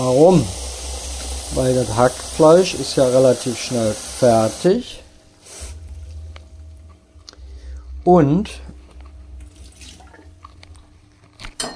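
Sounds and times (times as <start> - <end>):
speech: 0.0 - 0.6, 1.5 - 5.0, 8.0 - 8.7
tap water filling a cooking pot for boiling: 0.0 - 4.7.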